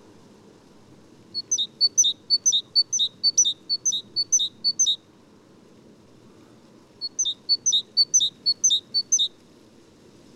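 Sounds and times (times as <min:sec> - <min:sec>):
faint low background hum: 0:00.0 - 0:10.3
great tit calling: 0:01.4 - 0:05.0, 0:07.0 - 0:09.3.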